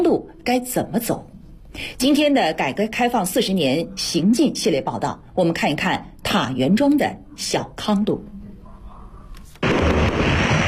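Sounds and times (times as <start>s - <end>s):
speech: 0.0s - 8.3s
fireworks bursting at a village fireworks show: 9.6s - 10.6s.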